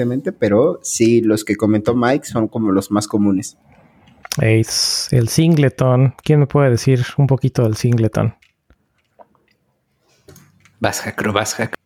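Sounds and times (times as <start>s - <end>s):
speech: 0.0s - 3.8s, 4.4s - 8.4s, 10.8s - 11.8s
person drinking water with gulps and swallows: 8.4s - 10.8s.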